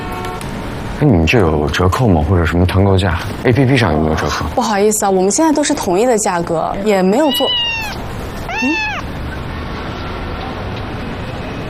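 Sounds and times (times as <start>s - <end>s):
speech: 1.0s - 8.9s
cat meowing at a hotel front desk during check-in: 7.0s - 9.2s.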